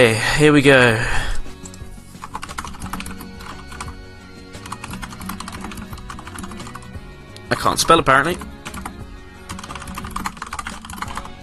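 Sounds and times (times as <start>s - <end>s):
speech: 0.0s - 1.2s, 7.5s - 8.5s
typing on a computer keyboard: 2.3s - 4.0s, 4.6s - 6.8s, 9.5s - 11.4s.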